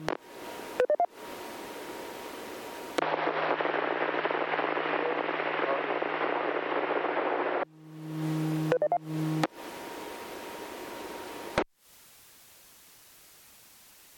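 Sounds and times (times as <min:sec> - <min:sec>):
radio static hissing: 0:00.0 - 0:14.1
low droning hum: 0:07.7 - 0:09.4.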